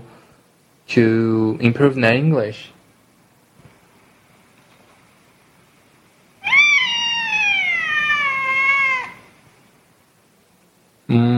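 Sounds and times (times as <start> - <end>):
speech: 0.9 - 2.8
cat meowing: 6.4 - 9.3.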